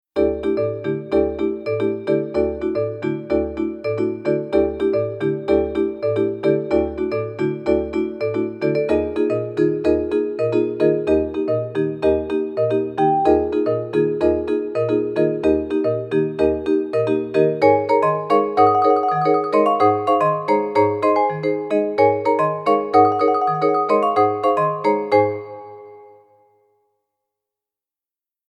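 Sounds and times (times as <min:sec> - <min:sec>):
vibraphone: 0:00.2 - 0:26.4.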